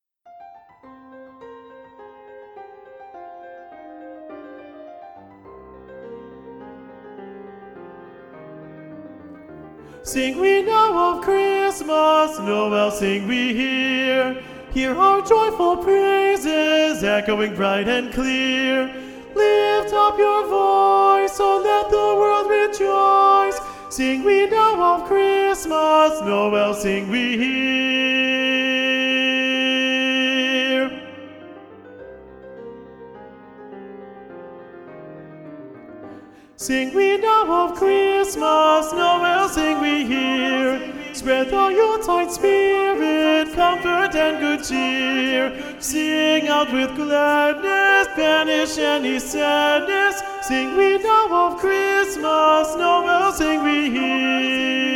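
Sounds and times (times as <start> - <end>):
alto voice singing a Christmas carol for SSA choir: 9.9 - 31.5, 36.6 - 54.9.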